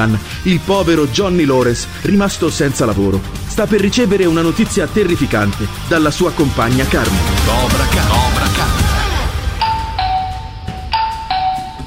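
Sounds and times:
speech: 0:00.0 - 0:08.4
constant noisy background: 0:00.0 - 0:11.8
doorbell ding-dong chimes: 0:09.6 - 0:11.8.

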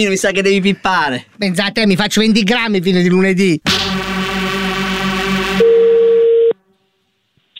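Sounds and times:
speech: 0:00.0 - 0:04.0
buzzy harmonic telephone line noise: 0:03.7 - 0:06.2
single-pitch telephone tone after call hung up: 0:05.6 - 0:06.6.

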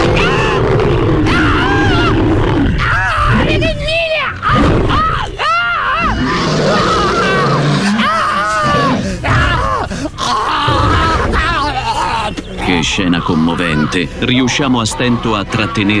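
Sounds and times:
lion grunting and moaning: 0:00.0 - 0:03.8, 0:06.0 - 0:12.8
excited human voices: 0:00.0 - 0:15.9
speech: 0:13.0 - 0:15.9.

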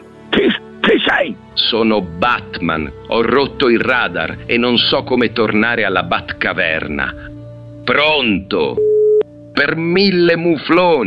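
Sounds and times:
speech: 0:00.9 - 0:07.3, 0:07.9 - 0:08.9, 0:09.6 - 0:11.0
telephone busy tone after call drops: 0:08.8 - 0:09.2.

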